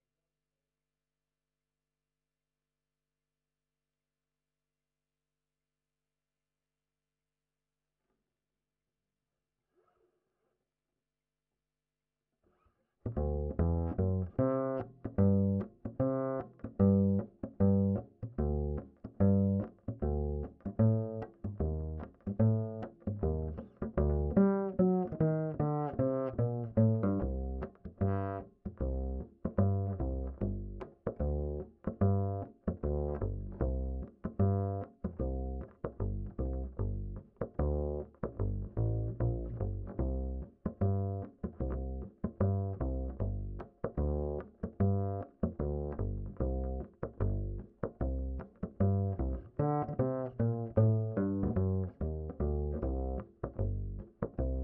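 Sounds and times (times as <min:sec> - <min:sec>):
ragtime bass line: 0:13.1 - 0:54.6.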